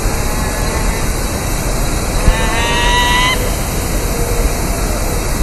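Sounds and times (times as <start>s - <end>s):
female Falco peregrinus calling: 0.1s - 5.4s.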